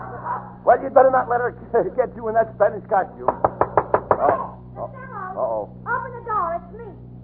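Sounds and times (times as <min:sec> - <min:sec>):
speech: 0:00.6 - 0:03.5, 0:04.2 - 0:07.1
knocking on a door: 0:03.2 - 0:04.5.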